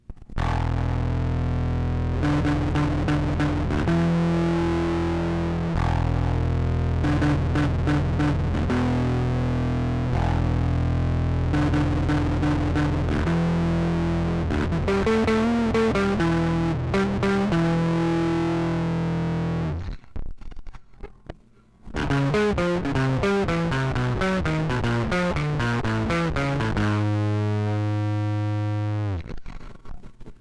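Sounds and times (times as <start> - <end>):
overdrive guitar distortion from 1N60 and 1N4002 diode pedal: 0.1 - 21.3, 21.9 - 30.3.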